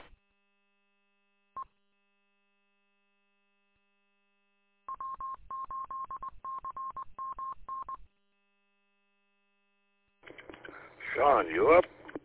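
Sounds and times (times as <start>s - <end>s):
touch-tone telephone keypad beeps: 4.9s - 7.9s
speech: 11.2s - 12.0s.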